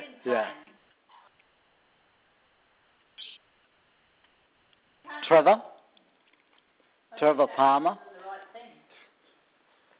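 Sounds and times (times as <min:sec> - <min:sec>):
bird squawk: 0:03.2 - 0:03.4
speech: 0:05.3 - 0:05.7, 0:07.2 - 0:08.0.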